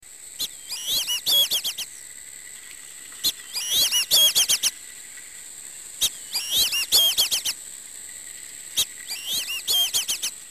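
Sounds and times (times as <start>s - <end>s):
black-bellied whistling duck calling: 0.4s - 1.9s, 3.2s - 4.7s, 6.0s - 7.6s, 8.8s - 10.4s.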